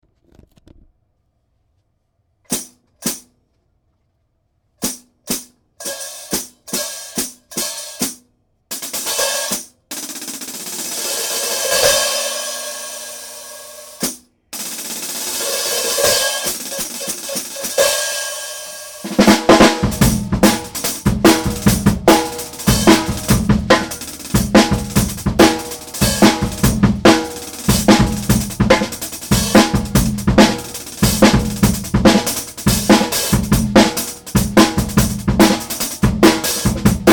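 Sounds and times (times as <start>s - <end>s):
jungle remix hi-hats: 8.8s - 37.1s.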